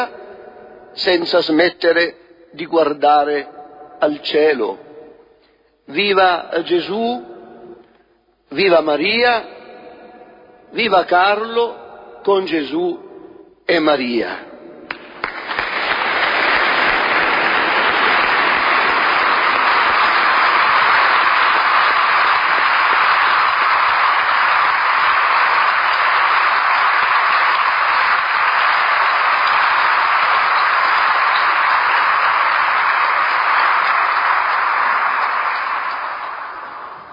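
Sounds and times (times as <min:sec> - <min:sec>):
speech: 0:01.0 - 0:04.9, 0:05.9 - 0:07.3, 0:08.5 - 0:09.6, 0:10.7 - 0:13.0, 0:13.7 - 0:14.5
large crowd applauding at a celebration: 0:14.9 - 0:37.1.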